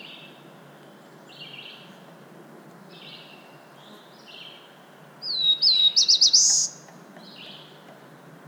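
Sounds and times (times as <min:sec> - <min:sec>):
Black-throated blue warbler Setophaga caerulescens singing: 0:00.0 - 0:00.4, 0:01.3 - 0:02.0, 0:02.9 - 0:07.8.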